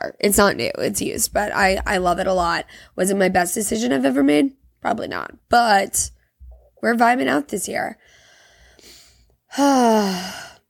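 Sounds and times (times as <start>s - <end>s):
speech: 0.0s - 6.2s, 6.8s - 8.2s, 9.5s - 10.5s
person taking a big deep breath: 8.0s - 10.6s.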